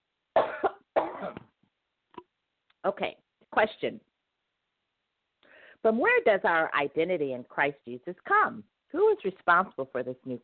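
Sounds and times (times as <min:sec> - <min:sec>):
speaker coughing mid-sermon: 0:00.4 - 0:01.5
speech: 0:02.8 - 0:04.1, 0:05.8 - 0:10.4.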